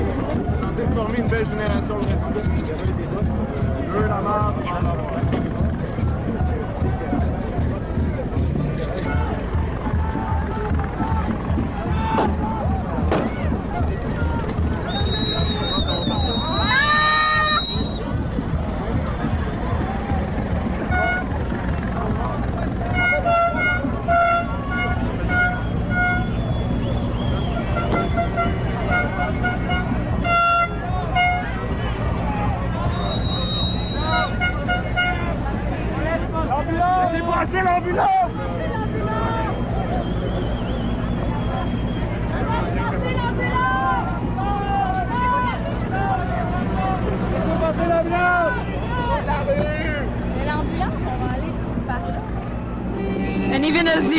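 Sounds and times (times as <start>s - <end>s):
dense crowd chatter: 0.0s - 54.1s
street noise: 0.0s - 54.1s
ambulance horn honking: 20.9s - 21.3s, 22.9s - 26.5s, 27.6s - 31.7s, 33.2s - 35.3s.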